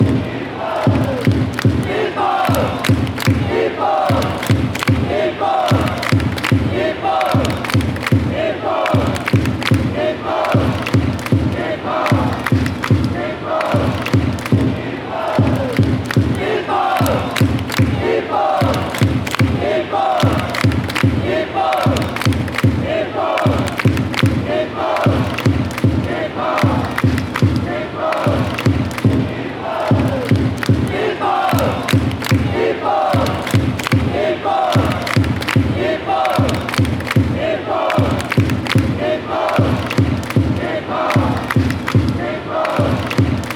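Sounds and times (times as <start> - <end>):
Japanese chant: 0.0 - 43.5.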